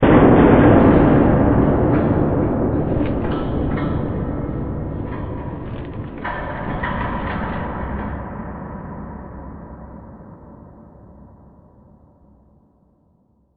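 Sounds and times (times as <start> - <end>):
distant big hit: 0.0 - 8.2.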